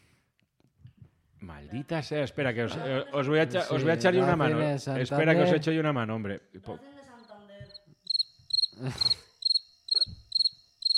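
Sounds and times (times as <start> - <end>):
speech: 1.5 - 6.9, 8.8 - 9.2
crickets chirping: 7.2 - 10.9.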